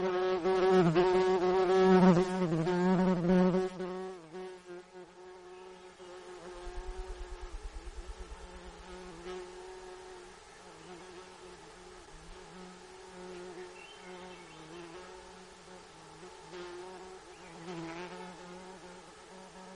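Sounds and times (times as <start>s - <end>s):
insect wing buzz in Gates of the Arctic, Alaska: 0.0s - 19.7s
low rapid pulsing: 6.5s - 9.5s.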